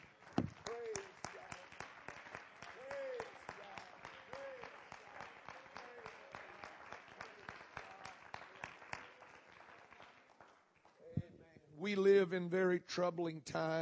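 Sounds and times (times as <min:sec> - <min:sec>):
audience clapping in praise: 0:00.0 - 0:11.3
speech: 0:11.8 - 0:13.7.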